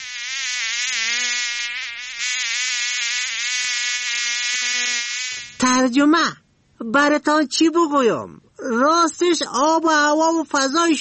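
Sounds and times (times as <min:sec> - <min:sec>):
mosquitoes and flies buzzing: 0:00.0 - 0:05.7
speech: 0:05.6 - 0:10.9.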